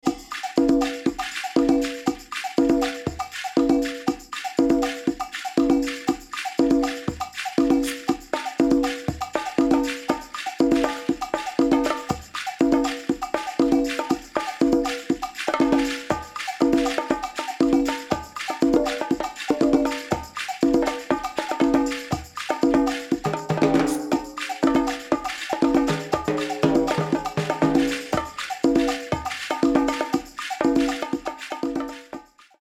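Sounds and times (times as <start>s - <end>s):
salsa Latin percussion: 0.0s - 32.6s.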